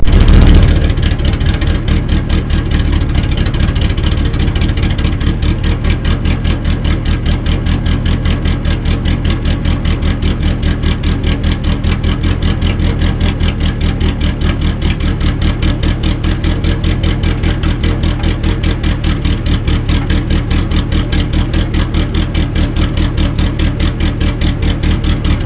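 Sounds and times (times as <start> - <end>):
racecar engine with cam idling: 0.0 - 25.4.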